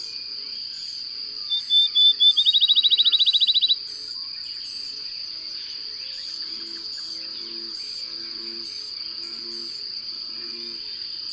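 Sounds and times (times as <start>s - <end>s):
bird song: 0.8s - 9.6s.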